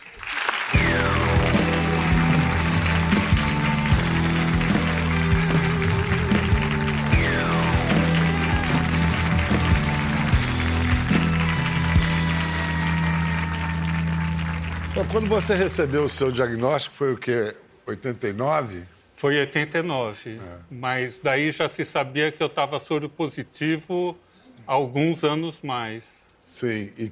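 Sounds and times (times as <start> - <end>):
studio audience clapping: 0.0 - 16.6
upbeat band music: 0.6 - 16.2
speech: 15.2 - 27.1.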